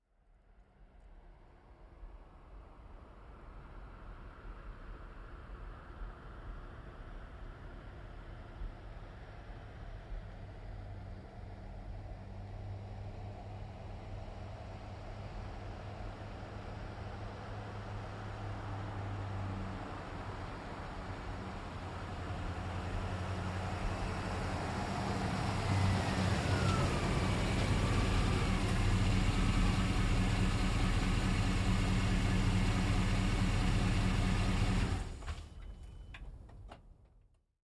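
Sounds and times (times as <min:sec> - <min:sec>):
GMC Savana van speeding up, stopping and slowing: 0:07.8 - 0:37.0.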